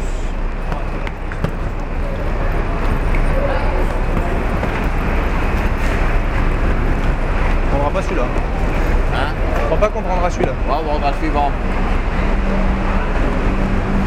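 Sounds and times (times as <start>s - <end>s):
engine rumble and broad hum at airport terminal: 0.0s - 14.0s
indistinct voices murmuring: 0.0s - 14.0s
speech: 10.2s - 12.7s.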